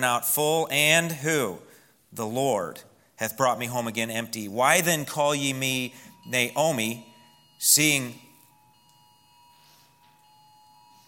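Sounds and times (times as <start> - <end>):
speech: 0.0 - 8.3
faint room noise: 0.0 - 11.0
phone emergency alert tone: 5.0 - 11.0.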